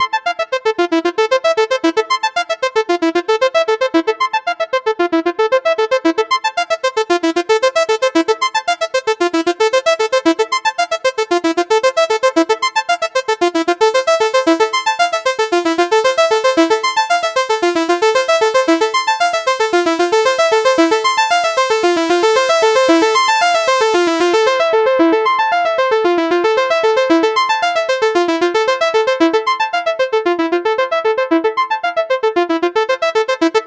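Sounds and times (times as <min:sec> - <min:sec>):
synth loop of falling arpeggios in A minor: 0:00.0 - 0:33.6.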